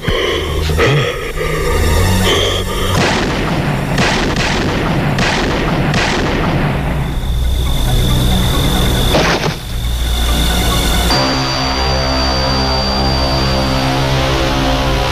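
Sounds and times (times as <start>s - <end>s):
dense continuous film soundtrack: 0.0s - 15.1s
gunshots fired in a film scene: 3.0s - 7.0s.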